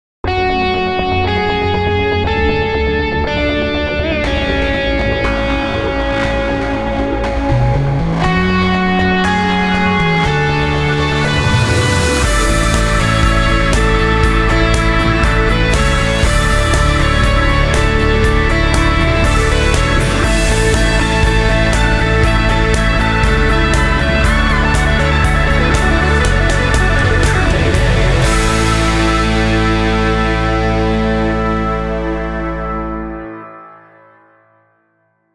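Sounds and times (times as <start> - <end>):
organ rock mix: 0.2 - 34.2.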